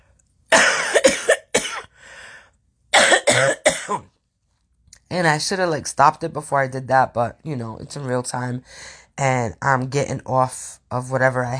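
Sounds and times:
harsh hacking coughing fit: 0.5 - 2.0, 2.9 - 4.2
wheezy breath: 1.9 - 2.6
speech: 3.4 - 4.1, 5.1 - 11.5.

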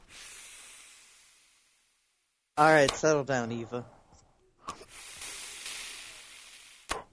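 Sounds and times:
person drawing on an e-cigarette: 0.0 - 2.2, 4.7 - 7.1
speech: 2.6 - 4.0.

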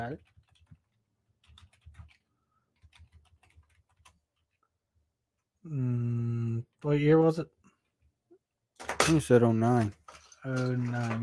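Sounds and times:
speech: 0.0 - 0.3, 5.7 - 7.6, 9.1 - 11.2
typing on a computer keyboard: 0.0 - 4.6.

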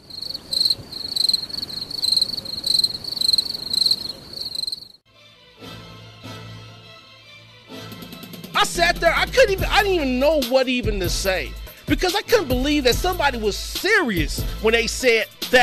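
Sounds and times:
crickets chirping in a high-pitched pulsing trill: 0.0 - 5.0
speech: 8.6 - 15.6.

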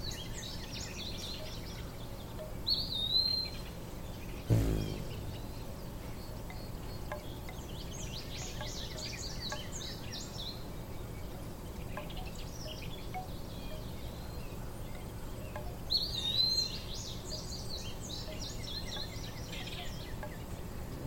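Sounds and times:
bamboo chimes on the porch tinkling in the breeze: 0.0 - 4.0, 6.3 - 20.9
bright bird chirps and twittering calls: 0.0 - 21.0
steady low outdoor hum: 0.0 - 21.0
single sharp knock or clack: 4.5 - 5.5.

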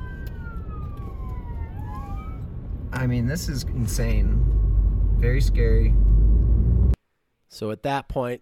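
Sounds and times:
emergency sirens wailing: 0.0 - 7.0
heavy rumble of traffic and road noise: 0.0 - 7.0
speech: 3.0 - 4.6, 5.2 - 6.2, 7.5 - 8.3.

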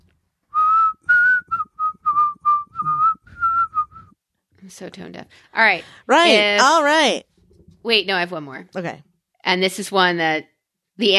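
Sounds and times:
person whistling a tune: 0.5 - 4.2
speech: 4.7 - 11.1.

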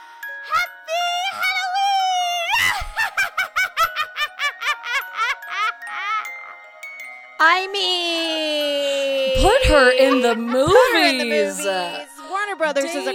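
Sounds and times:
woman's witch-like Halloween shriek and cackling: 0.5 - 6.3, 8.2 - 12.2
speech: 7.4 - 8.7, 9.4 - 13.1.

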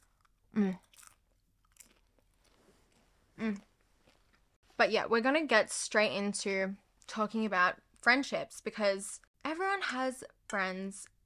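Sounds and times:
crunchy bites of popcorn: 0.0 - 2.6
soft chewing of popcorn: 0.0 - 4.6
speech: 4.8 - 11.1.

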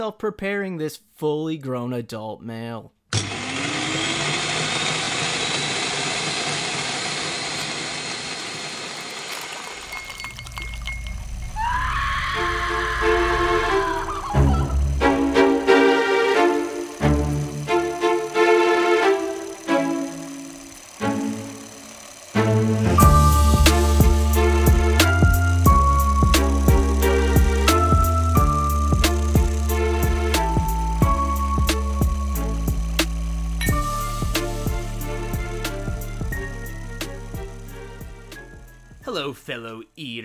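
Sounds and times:
speech: 0.0 - 3.2
power tool cutting through meat for deboning: 3.1 - 38.3
wet choppy bursts: 8.9 - 11.1
grinding and squealing tones: 11.0 - 19.6.

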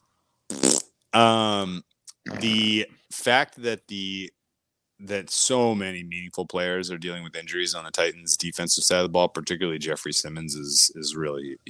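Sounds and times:
fart sound effect: 0.5 - 2.9
speech: 1.2 - 4.4, 5.0 - 11.6.

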